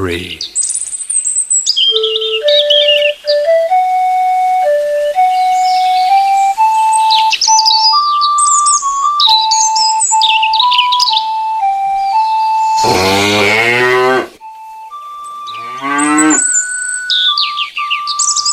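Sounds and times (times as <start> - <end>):
speech: 0.0 - 0.6
birds chirping: 0.0 - 18.5
thin steady tones: 1.9 - 18.5
cow mooing: 12.8 - 14.4, 15.4 - 16.6.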